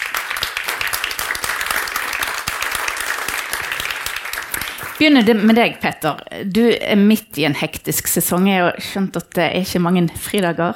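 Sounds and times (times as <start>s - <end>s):
audience applause: 0.0s - 5.1s
speech: 5.0s - 10.7s.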